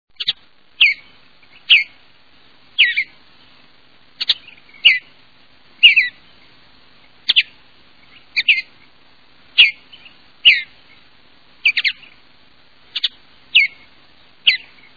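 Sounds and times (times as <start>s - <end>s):
Western Bluebird calling: 0.2s - 2.1s, 2.7s - 3.2s, 4.1s - 5.2s, 5.8s - 6.4s, 7.0s - 8.9s, 9.5s - 12.2s, 12.8s - 14.9s.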